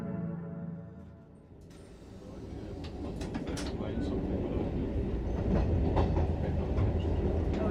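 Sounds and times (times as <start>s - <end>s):
train travelling to the Netherlands rolling on rails: 1.6s - 7.7s
train carriages clattering and clicking: 1.8s - 7.7s.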